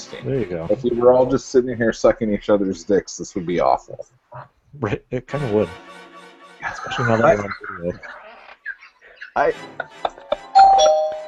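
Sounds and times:
voices: 0.0 - 5.8, 6.6 - 10.4
speech: 0.1 - 6.0, 6.7 - 8.2, 9.4 - 10.2
laughter: 4.8 - 5.8, 6.6 - 10.6
doorbell chiming: 10.6 - 11.2.

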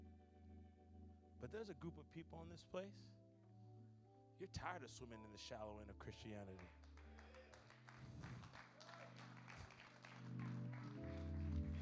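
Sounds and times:
sustained organ-like chords: 0.0 - 7.0, 9.1 - 11.7
speech: 1.4 - 3.2, 4.4 - 6.8
audience clapping: 6.5 - 11.7.

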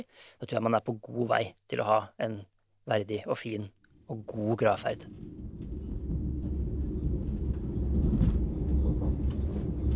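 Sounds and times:
speech: 0.0 - 5.4
moving train carriage rumble and droning hum: 4.6 - 9.9
faint clatter: 4.8 - 9.9.

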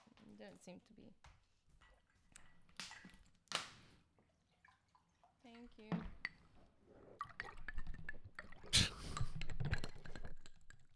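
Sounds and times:
speech: 0.4 - 1.4, 5.4 - 6.2
water pouring into a glass: 5.9 - 10.9.

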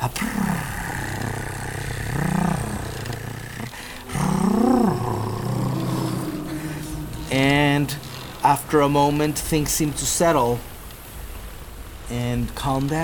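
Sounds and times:
anguished whale song with long low mournful calls: 0.0 - 9.4
steady rumbling drone: 0.0 - 11.2
speech: 8.7 - 10.7, 12.1 - 13.0.

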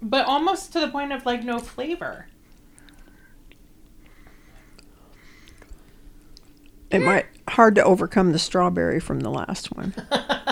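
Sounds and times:
speech: 0.0 - 2.4, 6.9 - 10.5
chewing a crunchy dry snack: 2.3 - 7.5.

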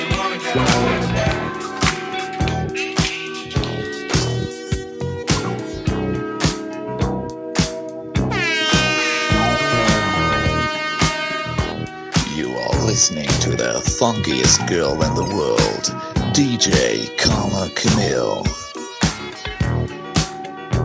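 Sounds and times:
thumping music beat: 0.0 - 20.8
loud brassy air horn blasts: 8.3 - 12.4
speech: 14.0 - 18.6.

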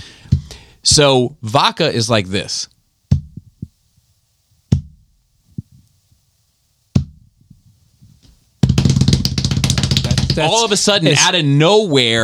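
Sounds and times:
soft low heartbeat thumps: 0.2 - 1.0, 3.1 - 4.1, 4.7 - 6.2, 6.9 - 10.5
speech: 0.9 - 2.7, 10.4 - 12.2.

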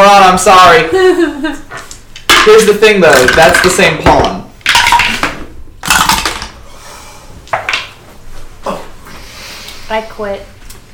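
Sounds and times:
speech: 0.3 - 1.6, 2.4 - 4.4, 9.9 - 10.6
dice clattering down through a dice tower: 2.3 - 6.6.

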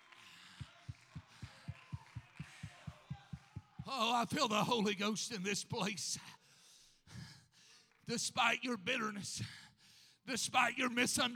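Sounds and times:
audience clapping in rhythm: 0.0 - 6.1, 7.7 - 9.0
speech: 3.9 - 6.4, 8.1 - 9.6, 10.3 - 11.3.

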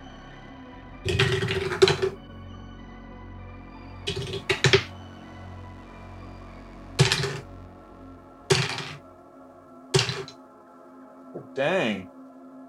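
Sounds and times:
dice rolling on a table: 1.1 - 2.2, 4.1 - 4.9, 7.0 - 7.4, 8.5 - 9.0, 10.0 - 10.3
speech: 11.6 - 12.1.

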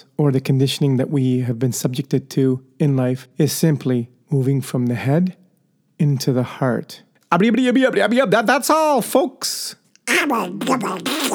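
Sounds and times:
speech: 0.1 - 5.4, 6.0 - 11.3
cartoon duck quacking: 10.1 - 11.3.

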